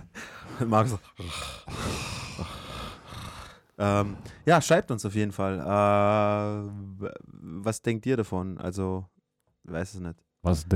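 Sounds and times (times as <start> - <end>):
person imitating heavy rasping breathing: 0.0 - 4.4
speech: 0.6 - 2.0, 3.8 - 10.7.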